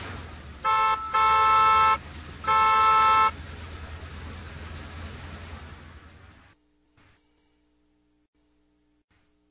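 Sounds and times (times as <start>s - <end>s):
loud car horn honks: 0.6s - 3.6s.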